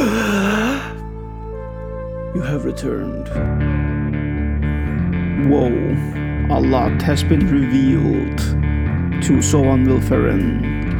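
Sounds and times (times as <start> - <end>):
person gasping for air: 0.0 - 1.1
speech: 2.4 - 4.3, 5.4 - 10.7.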